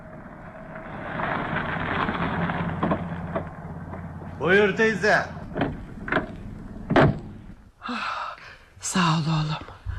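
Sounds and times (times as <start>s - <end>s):
road noise: 0.0s - 7.7s
taxi car engine rumble pulling up: 0.0s - 7.7s
speech: 4.4s - 5.4s, 9.0s - 9.7s.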